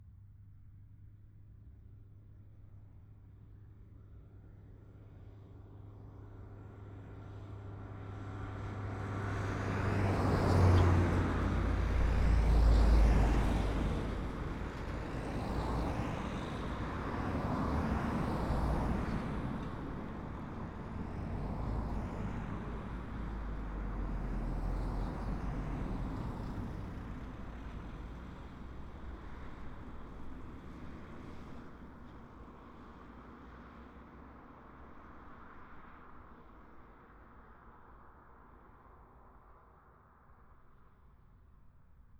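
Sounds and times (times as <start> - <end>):
cars passing by at moderate speed on a rural road: 7.9 - 38.0.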